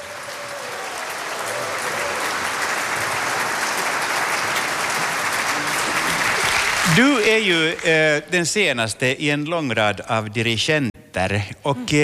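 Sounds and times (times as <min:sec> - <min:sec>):
large audience applauding: 0:00.0 - 0:08.2
speech: 0:06.9 - 0:12.0.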